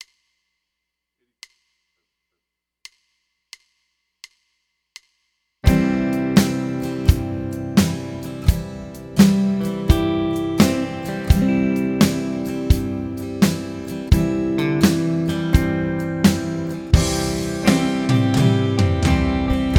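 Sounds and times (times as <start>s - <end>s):
C major scale backing song at 85 BPM: 5.6s - 19.7s.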